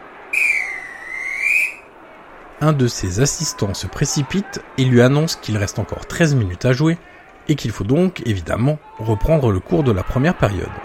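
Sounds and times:
referee's whistle blast for half-time: 0:00.4 - 0:01.9
speech: 0:02.6 - 0:10.8.

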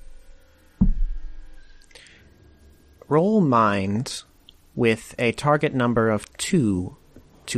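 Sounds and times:
faint hum: 0:00.0 - 0:07.5
heavy dull knock against a door: 0:00.8 - 0:01.2
speech: 0:03.1 - 0:07.5.

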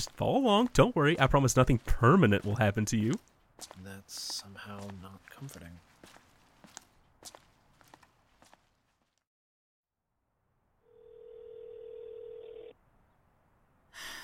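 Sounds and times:
speech: 0:00.0 - 0:06.2
footsteps shuffling: 0:00.0 - 0:09.3
telephone ringing while waiting for an answer: 0:10.8 - 0:12.8.

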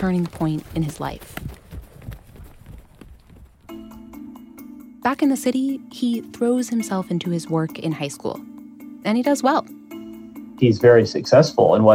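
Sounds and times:
speech: 0:00.0 - 0:01.5, 0:05.0 - 0:09.8, 0:10.6 - 0:11.9
horse hooves clip-clopping: 0:00.0 - 0:04.3.

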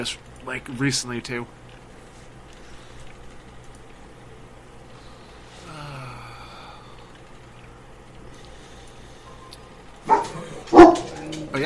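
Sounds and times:
speech: 0:00.0 - 0:01.6
dog barking: 0:10.0 - 0:11.3.

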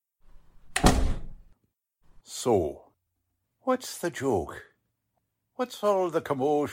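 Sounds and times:
door being pushed shut: 0:00.3 - 0:01.5
speech: 0:02.3 - 0:02.8, 0:03.6 - 0:04.7, 0:05.6 - 0:06.7.

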